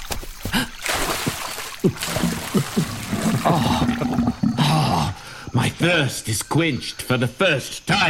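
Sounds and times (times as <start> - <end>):
spring water trickling and bubbling: 0.3 - 5.2
speech: 0.5 - 0.8, 1.8 - 2.8, 5.8 - 8.0.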